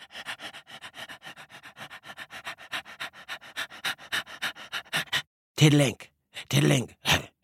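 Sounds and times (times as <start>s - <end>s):
dingo panting to keep cool: 0.0s - 5.3s
speech: 5.6s - 7.0s.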